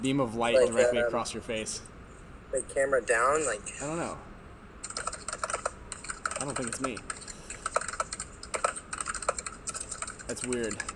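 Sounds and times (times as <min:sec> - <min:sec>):
speech: 0:00.0 - 0:04.3, 0:06.4 - 0:07.2, 0:10.3 - 0:10.9
typing on a loud mechanical computer keyboard: 0:04.8 - 0:10.9.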